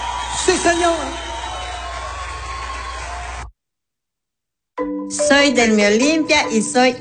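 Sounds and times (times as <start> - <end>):
crowd applauding and cheering: 0.0 - 3.5
speech: 0.5 - 1.3, 5.3 - 6.9.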